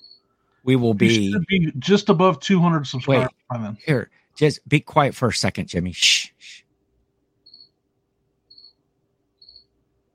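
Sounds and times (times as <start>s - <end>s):
cricket chirping outdoors: 0.0s - 0.3s, 7.4s - 7.8s, 8.4s - 9.8s
low steady hum: 0.0s - 10.1s
speech: 0.6s - 6.3s.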